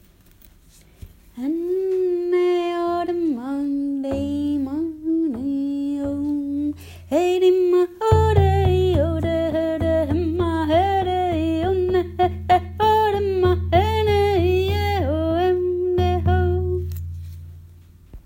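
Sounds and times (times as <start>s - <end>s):
voice: 1.4s - 16.8s
drum: 4.1s - 18.2s.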